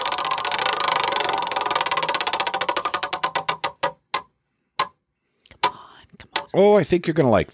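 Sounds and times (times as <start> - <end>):
prize wheel spinning: 0.0 - 4.0
speech: 6.5 - 7.5.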